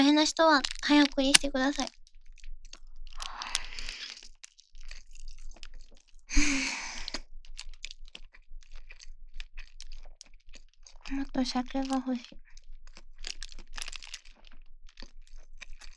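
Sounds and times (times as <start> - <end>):
speech: 0.0 - 2.0, 11.1 - 12.5
crunchy chewing while eating: 0.0 - 15.9
breathy burst: 6.3 - 7.2.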